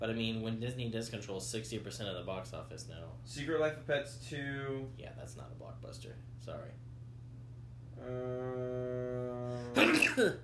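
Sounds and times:
speech: 0.0 - 6.9, 8.0 - 10.4
person sneezing after a wavering ahh: 9.5 - 10.4.

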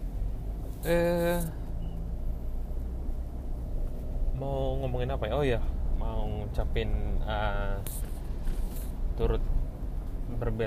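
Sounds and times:
engine and road rumble inside a car driving through a Jakarta traffic jam: 0.0 - 10.6
speech: 0.8 - 1.6, 4.4 - 8.2, 9.2 - 9.6, 10.4 - 10.6.

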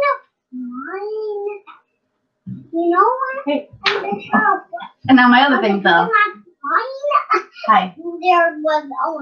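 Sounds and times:
toddler entering the room babbling in a high-pitched voice: 0.0 - 1.7, 2.7 - 4.8, 6.0 - 9.2
speech: 2.8 - 9.2.

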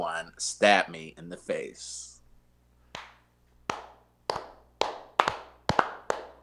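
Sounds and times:
speech: 0.0 - 2.1
slow sharp hand claps from a single person: 2.9 - 6.4.

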